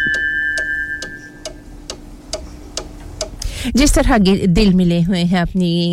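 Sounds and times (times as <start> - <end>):
studio clock ticking: 0.0 - 3.5
faint steady hum: 0.0 - 5.9
speech: 3.6 - 5.9.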